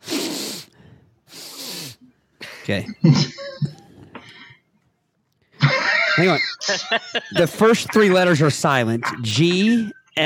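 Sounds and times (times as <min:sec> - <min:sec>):
loud airy sniffs: 0:00.0 - 0:02.1
speech: 0:02.7 - 0:03.8, 0:06.2 - 0:10.2
laughter: 0:05.6 - 0:09.8.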